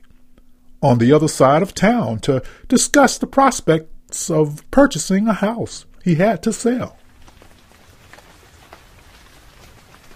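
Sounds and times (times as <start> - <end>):
speech: 0.8 - 7.0
steady rain pattering on a surface: 6.6 - 10.1.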